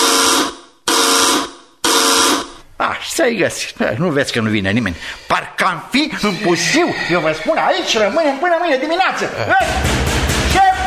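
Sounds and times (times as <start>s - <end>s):
alarm buzzer sounding after the alarm button is pressed: 0.0s - 2.6s
speech: 3.2s - 10.1s.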